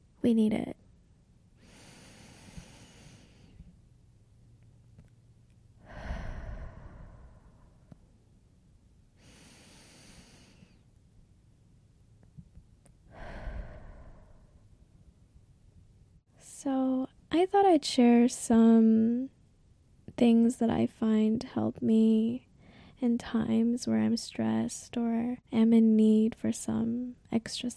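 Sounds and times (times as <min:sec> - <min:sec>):
speech: 0:00.2 - 0:00.8, 0:17.5 - 0:19.3, 0:20.2 - 0:27.7
slow deep breathing in a stress-relief exercise: 0:01.6 - 0:03.8, 0:05.8 - 0:08.1, 0:09.2 - 0:10.9, 0:13.1 - 0:14.8.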